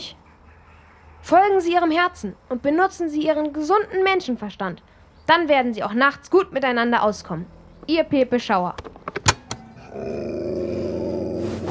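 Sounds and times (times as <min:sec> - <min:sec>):
speech: 0:01.3 - 0:09.2, 0:10.0 - 0:10.6
dog growling on a bed: 0:09.6 - 0:11.7.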